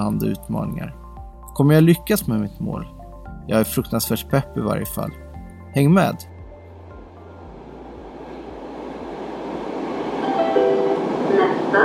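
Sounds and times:
speech: 0:00.0 - 0:01.0, 0:01.6 - 0:06.3
Stockholm subway train running through a tunnel between stations: 0:07.2 - 0:11.8.

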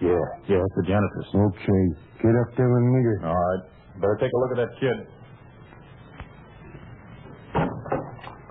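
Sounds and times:
speech: 0:00.2 - 0:05.2
door opening and closing: 0:07.5 - 0:08.4.

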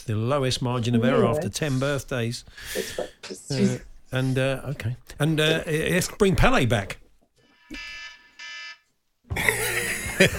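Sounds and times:
speech: 0:00.0 - 0:07.0, 0:07.7 - 0:08.0, 0:10.2 - 0:10.3
harsh electronic alarm blasts set against falling asleep while sunbathing: 0:07.5 - 0:08.8
laughter: 0:09.3 - 0:10.3.

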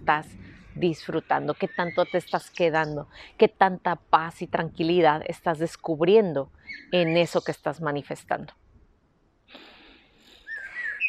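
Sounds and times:
speech: 0:00.1 - 0:08.6
deep breath drawn in slowly: 0:09.5 - 0:10.8.

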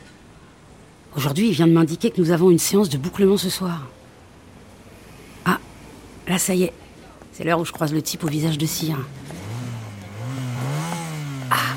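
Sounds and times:
speech: 0:01.2 - 0:04.0, 0:06.3 - 0:09.3
motorcycle engine revving past: 0:09.1 - 0:11.7.

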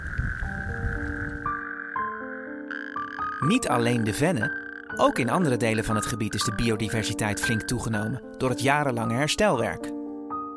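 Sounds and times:
chorus of natterjack toads calling toward evening in spring: 0:00.0 - 0:06.6
speech: 0:03.4 - 0:09.9.

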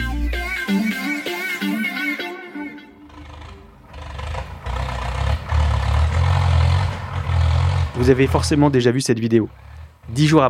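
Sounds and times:
brief tonal passage: 0:00.0 - 0:04.2
Ukrainian tractor engine towing a Russian tank: 0:03.0 - 0:10.4
speech: 0:08.0 - 0:10.4.

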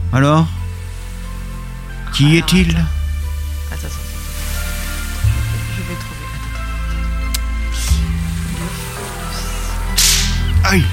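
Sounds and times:
low droning background: 0:00.0 - 0:10.9
speech: 0:00.1 - 0:00.6, 0:02.1 - 0:03.0, 0:03.7 - 0:04.0, 0:10.6 - 0:10.9
whip cracking to kill bed bugs on a boat: 0:09.9 - 0:10.5.

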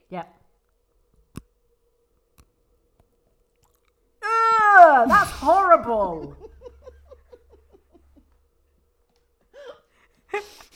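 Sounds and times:
speech: 0:00.1 - 0:00.4, 0:05.0 - 0:06.4
teeth biting into chocolate: 0:02.2 - 0:04.1
laughter: 0:05.1 - 0:08.4.

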